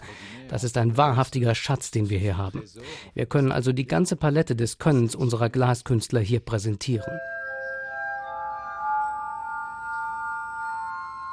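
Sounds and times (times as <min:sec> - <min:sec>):
speech: 0:00.5 - 0:07.3
sustained pure ringing tones from a glass organ: 0:07.0 - 0:11.3.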